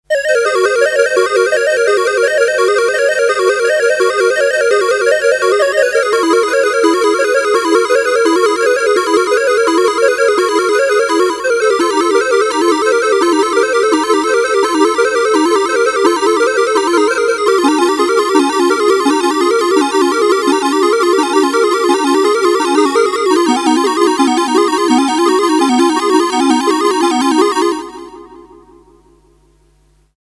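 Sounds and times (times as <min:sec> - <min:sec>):
RS370 polyphonic harmonic generator: 0:00.1 - 0:29.4.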